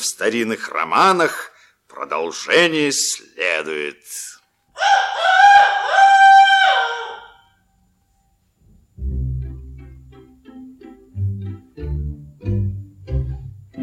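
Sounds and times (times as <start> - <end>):
speech: 0.0 - 5.7
rooster crowing: 4.7 - 7.6
low rhythmic thumping melody: 9.0 - 13.8.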